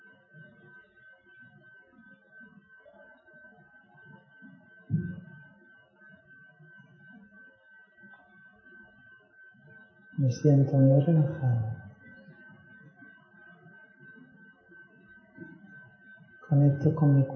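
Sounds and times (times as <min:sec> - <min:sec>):
slow gentle human heartbeat: 0:04.9 - 0:05.4
speech: 0:10.2 - 0:11.8, 0:16.7 - 0:17.3
faint constant high-pitched tone: 0:10.2 - 0:11.9.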